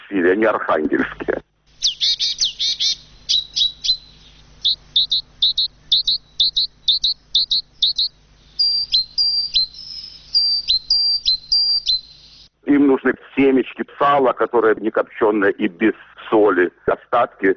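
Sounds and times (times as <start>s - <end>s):
speech: 0.1s - 1.5s, 13.4s - 17.5s
small birds chirping: 1.6s - 12.6s.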